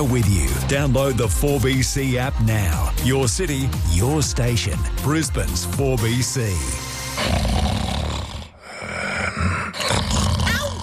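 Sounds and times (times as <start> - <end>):
speech: 0.0 - 7.5
person snoring loudly: 6.7 - 10.8.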